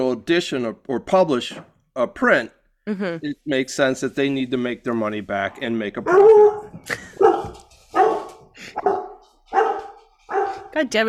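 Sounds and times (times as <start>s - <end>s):
speech: 0.1s - 7.6s, 10.8s - 11.0s
dog barking: 6.0s - 10.8s.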